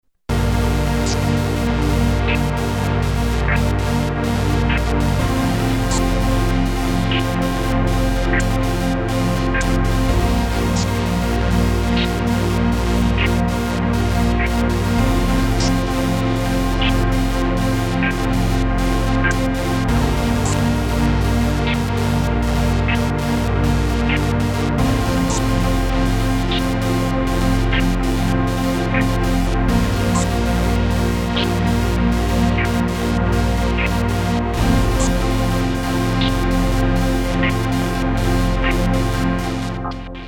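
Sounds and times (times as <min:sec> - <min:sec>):
filtered synth pad: 0:00.3 - 0:40.2.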